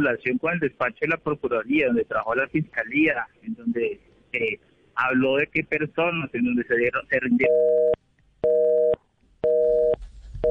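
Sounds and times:
speech: 0.0s - 8.0s
telephone busy tone: 7.4s - 10.4s.

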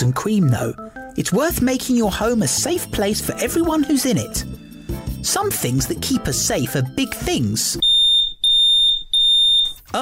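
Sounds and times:
speech: 0.0s - 7.8s
smoke alarm beeping: 7.8s - 9.9s.

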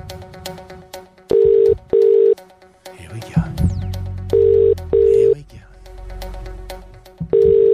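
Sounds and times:
double-burst phone ringback tone: 1.3s - 2.4s, 4.3s - 5.3s, 7.3s - 7.7s
person speaking: 2.9s - 3.7s, 4.8s - 5.8s.

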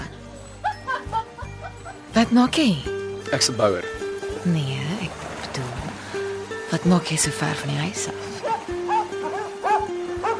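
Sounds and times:
laughter: 0.6s - 2.1s
speech: 2.2s - 4.9s, 6.7s - 8.3s
dog barking in the distance: 8.4s - 10.3s.

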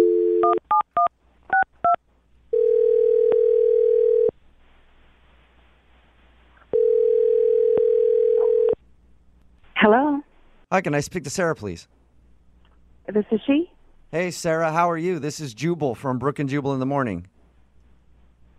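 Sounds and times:
long steady ringback tones over a phone line: 0.0s - 1.6s, 2.5s - 4.3s, 6.7s - 8.8s
speech: 10.8s - 12.0s, 13.1s - 17.3s.

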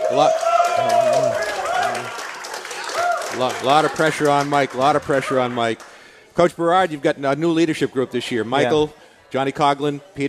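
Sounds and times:
ice hockey teammates shouting and whooping: 0.0s - 2.2s, 2.8s - 3.4s
ice hockey teammates applauding in a crowd: 0.0s - 6.3s
speech: 0.1s - 2.2s, 3.4s - 10.2s.

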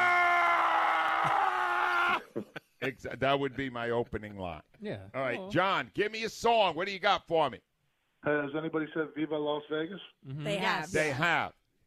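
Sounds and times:
man screaming: 0.0s - 2.3s
speech: 2.4s - 11.6s.

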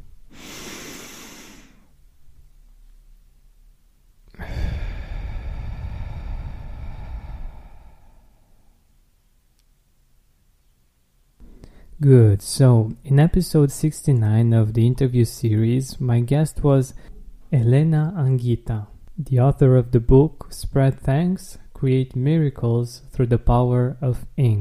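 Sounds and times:
person taking a deep breath in and out: 0.3s - 1.9s, 4.3s - 8.9s
speech: 12.0s - 24.6s.

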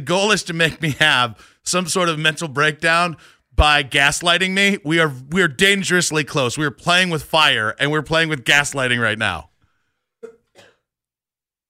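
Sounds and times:
speech: 0.0s - 9.5s
person coughing: 10.2s - 10.9s.

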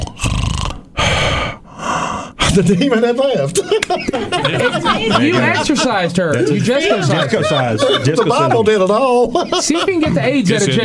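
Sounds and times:
voice imitating snoring: 0.0s - 2.4s
laughter: 2.6s - 10.8s
speech: 2.6s - 10.8s.

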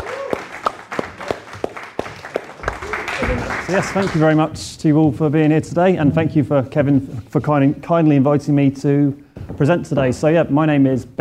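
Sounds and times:
brief vocal whoops: 0.0s - 1.4s
audience applauding: 0.0s - 4.5s
speech: 3.7s - 11.1s.

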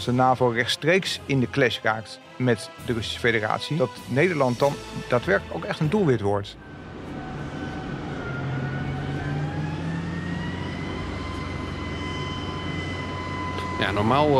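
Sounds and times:
speech: 0.0s - 6.6s, 13.8s - 14.3s
armored vehicle engine drone while rolling off a gangplank: 6.0s - 14.3s
rising mechanical whine of an armored vehicle: 6.5s - 14.3s.

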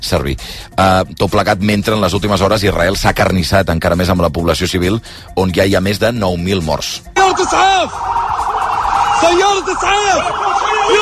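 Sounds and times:
speech: 0.0s - 8.2s, 9.2s - 11.0s
ambulance sirens wailing in Gaza City after an attack on an ambulance convoy: 7.2s - 11.0s.

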